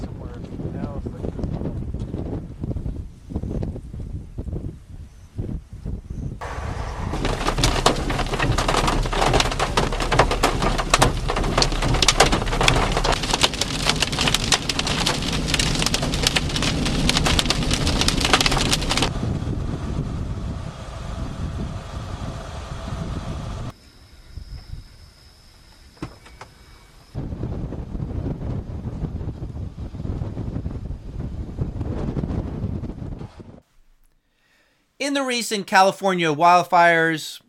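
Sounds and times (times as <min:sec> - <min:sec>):
low stormy rumble: 0:00.0 - 0:23.8, 0:27.2 - 0:34.0
steady rush of wind and rain: 0:00.0 - 0:25.0, 0:27.1 - 0:33.8
loud dense hail pelting a surface: 0:06.4 - 0:19.1
speech: 0:35.1 - 0:37.4.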